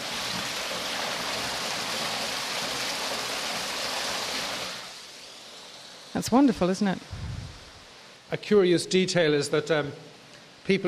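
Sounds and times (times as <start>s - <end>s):
small waterfall of spring water rushing: 0.0s - 6.7s
speech: 6.2s - 7.2s, 8.3s - 10.8s.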